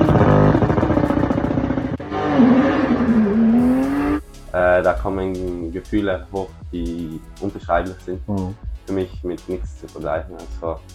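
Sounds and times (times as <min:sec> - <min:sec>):
race car engine screaming at high revs: 0:00.0 - 0:04.2
speech: 0:04.8 - 0:10.9.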